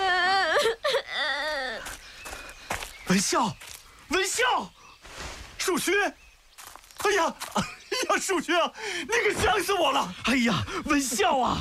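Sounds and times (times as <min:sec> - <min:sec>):
child crying: 0:00.0 - 0:01.9
speech: 0:03.1 - 0:04.8, 0:05.6 - 0:06.2, 0:07.0 - 0:11.5.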